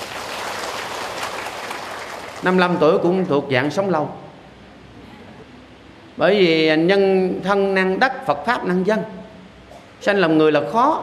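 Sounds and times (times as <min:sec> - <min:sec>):
audience applause at a Buddhist dharma talk: 0:00.0 - 0:02.8
speech: 0:02.4 - 0:04.2, 0:06.2 - 0:09.2, 0:10.0 - 0:11.0.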